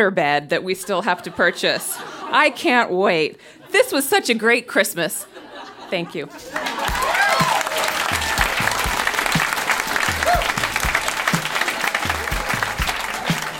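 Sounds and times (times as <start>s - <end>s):
speech: 0.0s - 6.8s
laughter: 0.8s - 2.8s, 5.2s - 13.5s
audience clapping: 6.4s - 13.5s.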